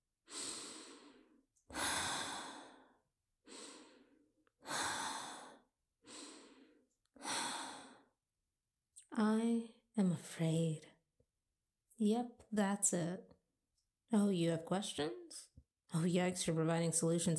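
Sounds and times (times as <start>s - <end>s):
slow soft human breathing, inhaling and exhaling: 0.3s - 8.2s
speech: 9.2s - 10.9s, 12.0s - 13.4s, 14.1s - 17.3s.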